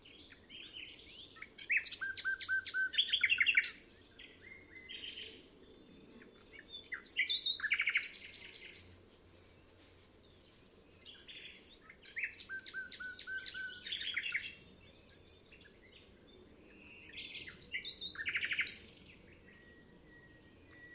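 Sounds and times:
nightingale singing: 0.0 - 8.9, 10.4 - 20.9.

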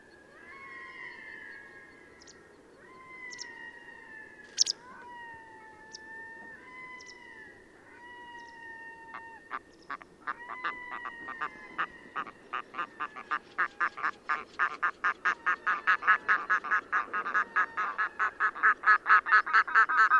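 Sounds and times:
red-throated loon short cackling notes: 8.2 - 20.1.

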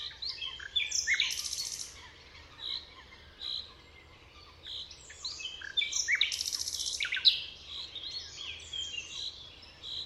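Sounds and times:
common nightingale song: 0.0 - 10.0.

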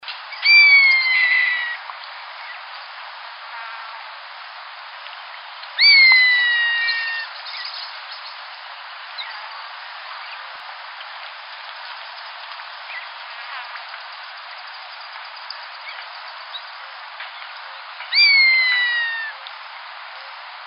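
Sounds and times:
common buzzard calling: 0.4 - 1.8, 5.8 - 7.3, 18.1 - 19.4.

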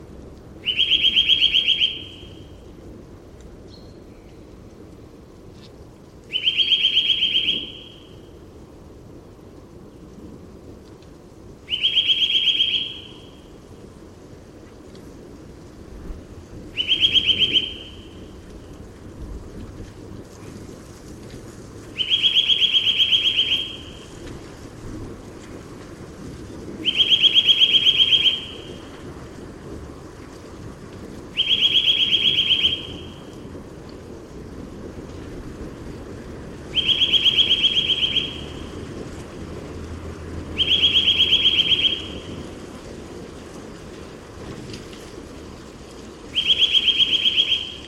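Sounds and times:
Eurasian nuthatch calling: 0.6 - 2.4, 6.3 - 8.1, 11.7 - 13.3, 16.8 - 18.2, 22.0 - 24.0, 26.8 - 28.7, 31.4 - 33.0, 36.8 - 38.6, 40.6 - 42.2, 46.3 - 47.8.

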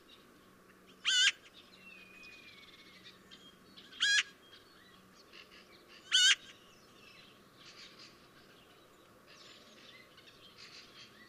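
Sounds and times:
Eurasian magpie harsh rasping calls: 1.0 - 1.4, 3.9 - 4.3, 6.0 - 6.5.

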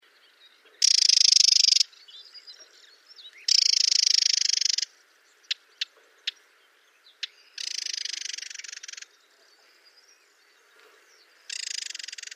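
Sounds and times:
Spectacled warbler giving sharp isolated ticks: 0.6 - 6.5, 7.1 - 9.6, 10.7 - 12.3
Spectacled warbler giving a dry buzzy rattle: 3.5 - 4.9, 7.6 - 9.1, 11.5 - 12.3.

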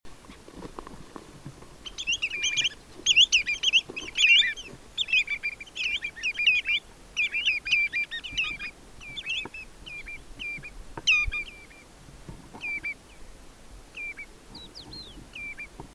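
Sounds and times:
spotted redshank singing: 1.8 - 11.9, 12.6 - 13.2, 13.9 - 15.8.

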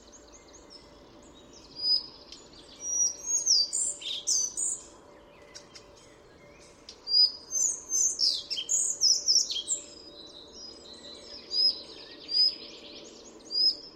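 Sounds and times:
Collared flycatcher song: 0.0 - 13.9.

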